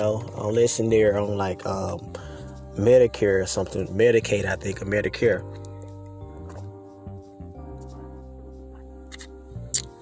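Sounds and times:
speech: 0:00.0 - 0:05.6
person sipping and swallowing water: 0:06.3 - 0:06.8, 0:08.7 - 0:10.0
person slurping water: 0:09.1 - 0:10.0.

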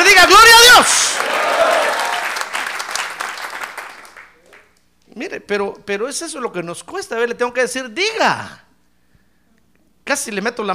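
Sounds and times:
congregation applauding: 0:00.8 - 0:04.8
speech: 0:05.5 - 0:08.7, 0:10.1 - 0:10.7.

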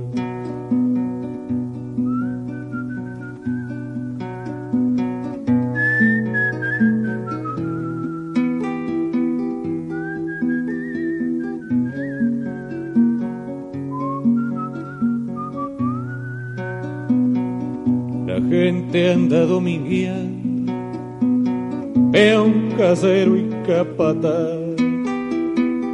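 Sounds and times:
steady instrumental backing: 0:00.0 - 0:25.9
person whistling a wandering sliding melody: 0:02.0 - 0:04.3, 0:05.7 - 0:08.8, 0:09.8 - 0:13.2, 0:13.8 - 0:16.9
speech: 0:19.3 - 0:20.3, 0:22.2 - 0:24.6.

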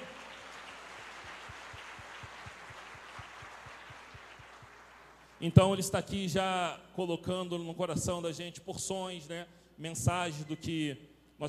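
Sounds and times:
audience applauding: 0:00.0 - 0:05.5
speech: 0:05.4 - 0:11.4.

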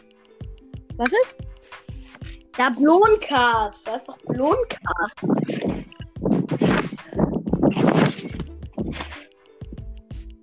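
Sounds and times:
speech: 0:01.0 - 0:06.7
heavy thuds of someone bouncing on a trampoline: 0:05.4 - 0:09.2.

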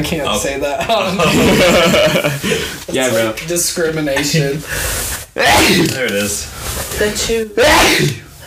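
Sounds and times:
speech: 0:00.0 - 0:08.4
laughter: 0:00.8 - 0:02.8
loud forceful sneeze: 0:05.4 - 0:06.0, 0:07.6 - 0:08.4.

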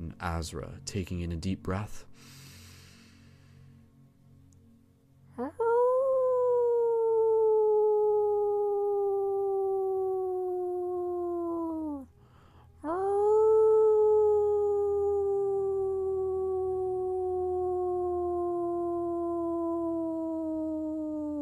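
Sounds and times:
speech: 0:00.2 - 0:02.4
human voices imitating wolf howls: 0:05.4 - 0:12.1, 0:12.8 - 0:21.4.

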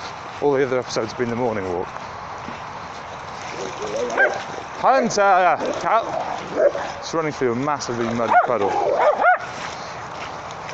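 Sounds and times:
steady outdoor hiss: 0:00.0 - 0:10.7
speech: 0:00.4 - 0:02.6, 0:03.6 - 0:09.6
short-haired Vizsla dog yipping on a walk: 0:03.9 - 0:04.5, 0:08.3 - 0:09.5.

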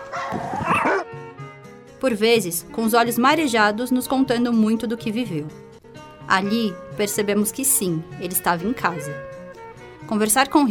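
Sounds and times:
several dogs barking and yipping at a smallholding: 0:00.0 - 0:01.2
speech: 0:02.0 - 0:05.6, 0:06.3 - 0:09.3, 0:10.1 - 0:10.6.

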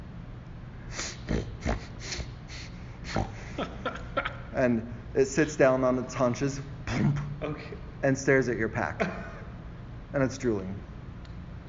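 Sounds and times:
person imitating a bear sniffing: 0:00.9 - 0:03.6
speech: 0:04.6 - 0:09.3, 0:10.1 - 0:10.9.

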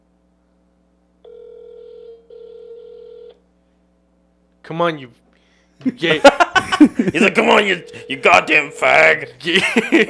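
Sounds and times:
faint hum: 0:00.0 - 0:10.0
phone ringback tone electronic buzzes: 0:01.2 - 0:03.4, 0:07.4 - 0:09.2
speech: 0:04.7 - 0:05.2, 0:05.8 - 0:10.0
laughter: 0:05.8 - 0:08.2, 0:09.5 - 0:10.0.

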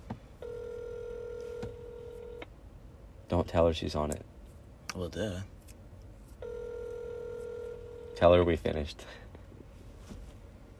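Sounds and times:
phone ringback tone on an outgoing call: 0:00.4 - 0:02.4, 0:06.4 - 0:08.2
speech: 0:03.3 - 0:04.3, 0:05.0 - 0:05.6, 0:08.2 - 0:09.2.

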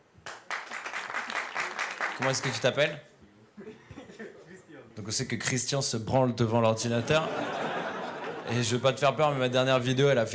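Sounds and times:
audience applause: 0:00.2 - 0:02.8
speech: 0:02.2 - 0:03.7, 0:05.0 - 0:07.7, 0:08.5 - 0:10.3
laughter: 0:03.6 - 0:04.7, 0:07.0 - 0:08.8.

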